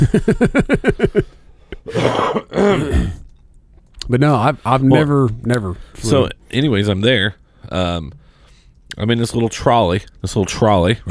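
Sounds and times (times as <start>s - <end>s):
speech: 0.0s - 1.3s, 4.1s - 8.2s, 9.0s - 11.1s
harsh raspy coughs: 1.8s - 3.3s
throat clearing with short voiced grunts: 1.9s - 3.3s.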